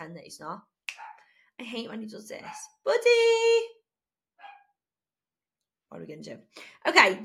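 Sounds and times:
speech: 0.0 - 0.8, 1.6 - 3.8, 5.9 - 7.2
dog barking: 1.0 - 1.3, 4.4 - 4.7.

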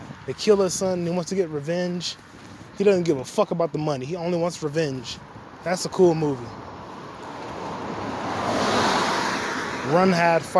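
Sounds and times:
speech: 0.3 - 6.7, 9.9 - 10.5
car driving through a dip in the street sending up spray: 7.6 - 9.8.

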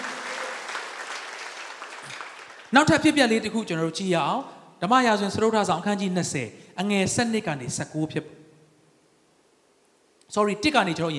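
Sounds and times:
church congregation applauding during a Sunday sermon service: 0.0 - 3.0
speech: 2.7 - 8.4, 10.3 - 11.1.

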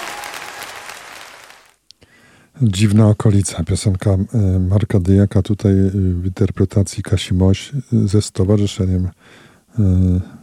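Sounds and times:
audience applause: 0.0 - 1.8
speech: 2.6 - 10.4.

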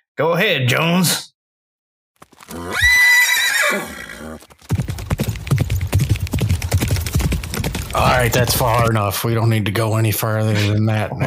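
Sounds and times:
speech: 0.2 - 1.3, 3.7 - 4.5, 7.9 - 11.2
horse hooves clip-clopping: 2.2 - 9.0
horse whinnying: 2.4 - 4.5.

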